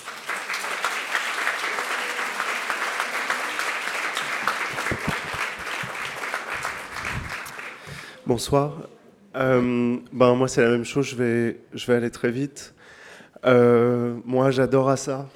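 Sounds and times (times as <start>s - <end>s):
sustained applause from a sizable audience: 0.0s - 8.2s
speech: 8.3s - 12.8s, 13.4s - 15.3s.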